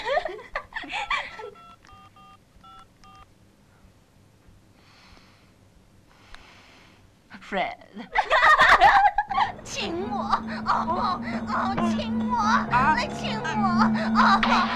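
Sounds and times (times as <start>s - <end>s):
laughter: 0.0s - 1.6s, 8.0s - 14.7s
telephone keypad tones as someone dials a phone call: 1.6s - 3.3s
speech: 7.5s - 9.0s, 9.7s - 14.7s.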